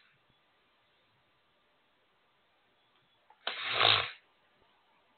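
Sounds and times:
person blowing their nose: 3.4 - 4.2.

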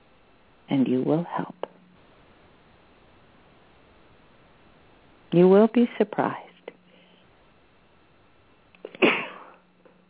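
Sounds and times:
speech: 0.7 - 1.6, 5.3 - 6.5
intake of breath: 6.9 - 7.4
sneeze: 8.9 - 9.6.

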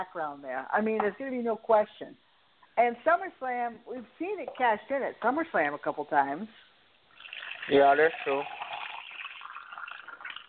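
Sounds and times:
speech: 0.0 - 6.7, 7.7 - 8.6
liquid poured steadily into a glass: 7.1 - 10.4.

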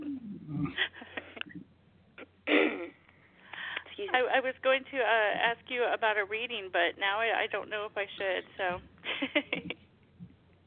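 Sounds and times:
rough heavy coughing: 2.4 - 3.0
raspy breathing: 3.2 - 4.0
speech: 4.2 - 9.6.

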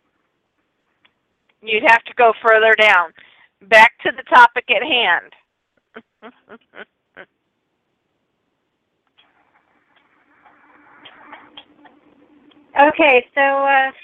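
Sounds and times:
speech: 1.6 - 5.4, 6.0 - 7.3, 12.8 - 14.0
nasal honking buzz-like alarm clock tone: 9.2 - 13.0.

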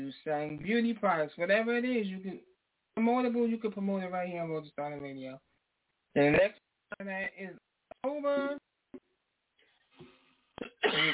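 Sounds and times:
speech: 0.2 - 5.5, 6.1 - 9.0, 10.0 - 11.1
person coughing: 10.6 - 11.1.

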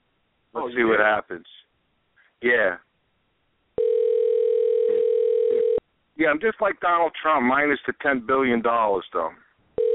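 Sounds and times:
speech: 0.5 - 1.6, 2.4 - 2.8, 6.2 - 9.4
telephone dial tone after the dial button is pressed: 3.8 - 5.8, 9.8 - 9.9.

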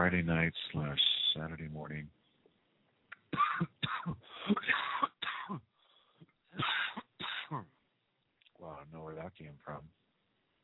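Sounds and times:
speech: 0.0 - 2.2, 9.1 - 10.0
person clearing throat: 3.3 - 5.6, 6.6 - 7.7
person coughing in harsh hacks: 3.3 - 5.6, 6.6 - 7.7.

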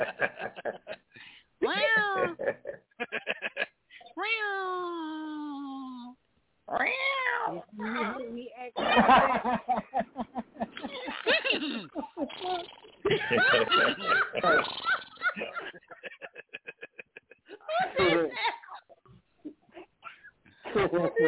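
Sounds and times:
laughter: 0.0 - 1.1, 1.7 - 3.8, 8.8 - 12.4, 13.0 - 19.0, 20.6 - 21.2
person mimicking a horse whinny and neighs: 1.6 - 2.4, 4.0 - 8.2, 10.9 - 13.1, 14.4 - 15.4
voices: 1.6 - 2.8, 4.0 - 9.8, 10.8 - 16.0, 17.5 - 18.8, 20.7 - 21.2.

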